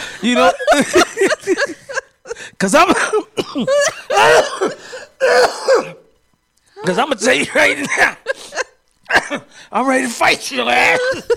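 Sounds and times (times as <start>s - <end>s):
laughter: 0.0s - 3.1s, 7.3s - 9.4s
speech: 0.2s - 1.9s, 2.6s - 4.7s, 6.9s - 8.2s, 9.8s - 11.3s
person coughing harshly with a throaty rasp: 2.9s - 6.1s, 7.4s - 9.5s, 10.8s - 11.3s.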